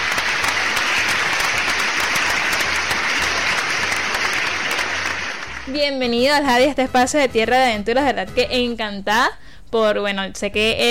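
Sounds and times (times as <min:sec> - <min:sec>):
applause from a large audience: 0:00.0 - 0:05.7
speech: 0:05.7 - 0:10.8.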